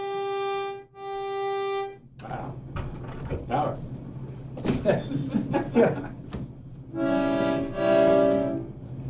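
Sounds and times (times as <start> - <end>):
accordion chords imitating a train whistle: 0.0 - 2.1, 6.9 - 8.8
laughter: 4.7 - 6.3
speech: 4.8 - 6.2.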